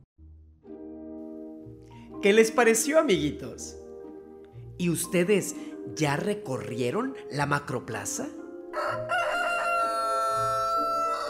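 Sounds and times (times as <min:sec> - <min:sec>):
speech: 0:02.2 - 0:03.8, 0:04.8 - 0:09.2
rooster crowing: 0:08.7 - 0:11.2.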